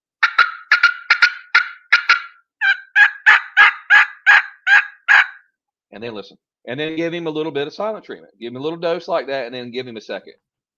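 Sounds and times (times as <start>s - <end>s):
turkey call sharp clipped cut notes: 0.2s - 5.5s
speech: 5.9s - 10.5s.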